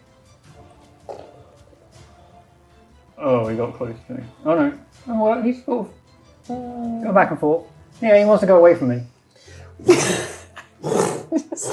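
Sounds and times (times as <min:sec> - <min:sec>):
speech: 0:03.2 - 0:09.1, 0:09.8 - 0:11.7
person voicing a dracolich's monstrous raspy roar: 0:10.8 - 0:11.7.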